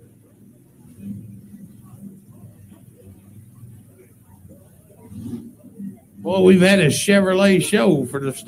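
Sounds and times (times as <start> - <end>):
deep throaty Ford pulling truck engine rumbling as truck comes out at a truck pull: 0.0 - 8.4
speech: 6.2 - 8.4.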